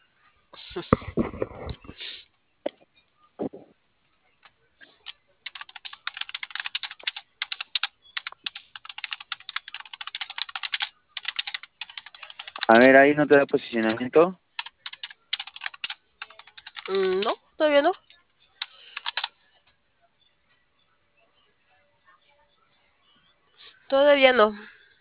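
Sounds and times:
speech: 0:00.8 - 0:01.1, 0:12.7 - 0:14.4, 0:24.3 - 0:24.6
rapid computer keyboard typing: 0:05.0 - 0:17.4, 0:18.6 - 0:19.3.

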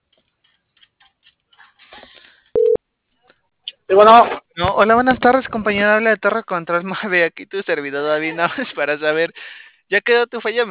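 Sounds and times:
outgoing phone call ringing tone from a dispatch control center: 0:02.6 - 0:02.8
speech: 0:03.9 - 0:10.6.

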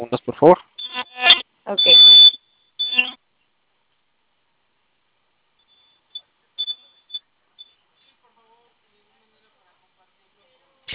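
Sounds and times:
speech: 0:00.0 - 0:00.7
alarm system keypad beeping: 0:00.8 - 0:03.2.

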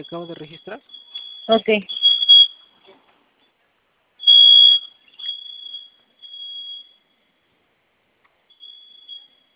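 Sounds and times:
speech: 0:00.0 - 0:02.2
home security alarm intermittent beeping: 0:00.0 - 0:02.7, 0:04.2 - 0:07.0, 0:08.5 - 0:09.5
home security alarm blaring a shrill high-pitched electronic tone: 0:00.0 - 0:02.8, 0:04.2 - 0:07.3, 0:08.5 - 0:09.5.

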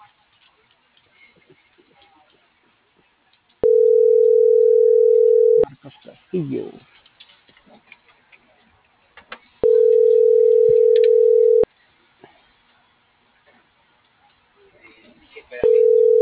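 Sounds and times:
faint noise: 0:00.0 - 0:16.1
telephone tone while placing a call: 0:03.6 - 0:05.6, 0:09.6 - 0:11.7, 0:15.6 - 0:16.1
speech: 0:06.4 - 0:06.9.

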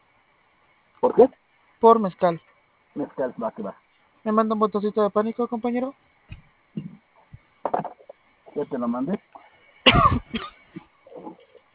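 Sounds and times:
speech: 0:01.0 - 0:06.0, 0:08.6 - 0:09.2, 0:09.9 - 0:10.6
rasping throat clearing: 0:06.8 - 0:07.0, 0:09.9 - 0:11.6
person coughing: 0:09.9 - 0:10.9.

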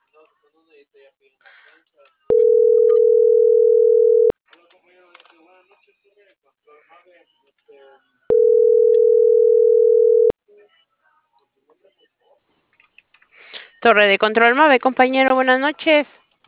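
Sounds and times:
speech: 0:00.7 - 0:03.2, 0:05.7 - 0:08.8, 0:13.4 - 0:16.4
telephone line tone from another telephone: 0:02.3 - 0:04.3, 0:08.3 - 0:10.3.

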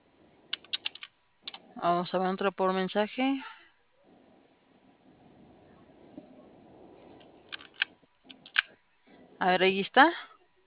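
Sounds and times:
computer keyboard clicks: 0:00.5 - 0:01.6
speech: 0:01.8 - 0:03.5, 0:09.4 - 0:10.3.

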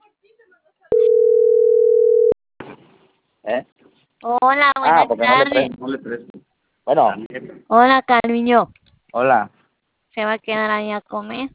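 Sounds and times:
steady single-pitch telephone tone while a call is dialed: 0:00.9 - 0:02.4
speech: 0:03.5 - 0:06.3, 0:06.9 - 0:09.6, 0:10.2 - 0:11.5.

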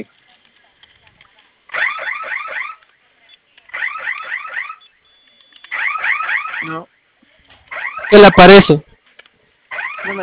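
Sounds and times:
electronic security alarm blaring from a keypad: 0:01.7 - 0:02.8, 0:03.7 - 0:07.0, 0:07.7 - 0:08.8, 0:09.7 - 0:10.2
speech: 0:06.7 - 0:07.0, 0:08.1 - 0:08.9.

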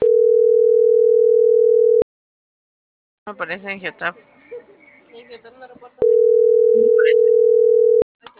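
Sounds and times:
telephone ringback tone during an outgoing call: 0:00.0 - 0:02.0, 0:06.0 - 0:08.0
speech: 0:03.3 - 0:04.4, 0:05.2 - 0:08.0.

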